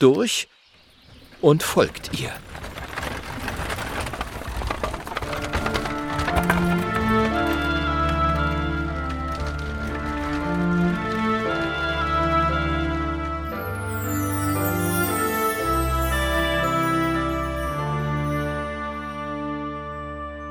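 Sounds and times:
speech: 0.0s - 0.6s, 1.4s - 2.7s
hooves of a horse-drawn carriage clip-clopping: 1.0s - 19.2s
sustained tonal music: 5.0s - 20.4s.

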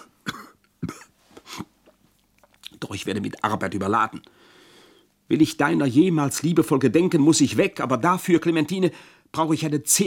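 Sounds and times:
hollow raspy cough: 0.0s - 1.8s
speech: 2.9s - 4.4s, 5.3s - 10.0s.

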